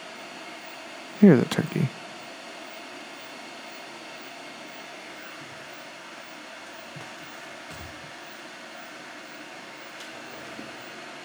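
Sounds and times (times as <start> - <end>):
speech: 1.2 - 2.0
electric kettle heating water: 2.5 - 11.2.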